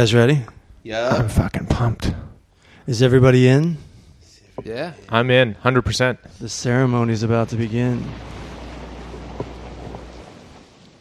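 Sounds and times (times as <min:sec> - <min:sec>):
speech: 0:00.0 - 0:02.2, 0:02.9 - 0:03.9, 0:04.6 - 0:08.4
falling rain: 0:06.4 - 0:10.9
deep continuous rumble of thunder: 0:06.7 - 0:10.9
brief sharp thunder crack: 0:07.2 - 0:10.9.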